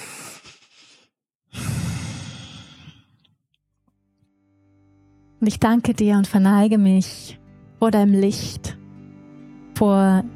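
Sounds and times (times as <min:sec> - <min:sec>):
deep breathing during a guided meditation: 0:00.0 - 0:03.3
speech: 0:05.4 - 0:08.8, 0:09.8 - 0:10.3.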